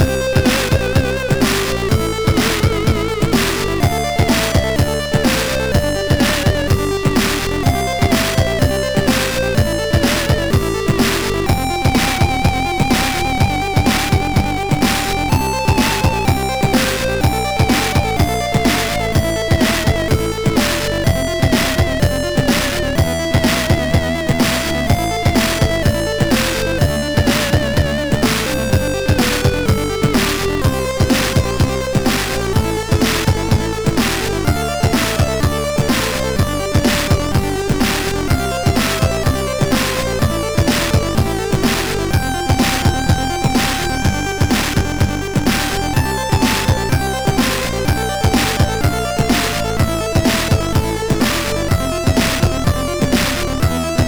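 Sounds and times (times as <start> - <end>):
game music on a MOS6581R3 SID chip: 0.0 - 54.0.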